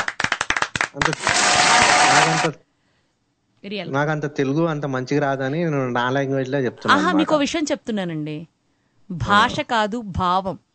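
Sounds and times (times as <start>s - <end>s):
audience clapping at a gathering: 0.0s - 2.6s
speech: 1.0s - 2.7s, 3.6s - 8.5s, 9.1s - 10.6s.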